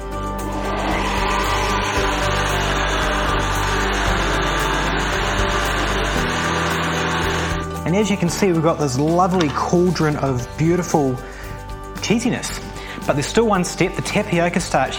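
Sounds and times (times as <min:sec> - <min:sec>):
high-speed blender churning a thick mixture: 0:00.4 - 0:07.7
speech: 0:08.0 - 0:11.3, 0:12.1 - 0:14.9.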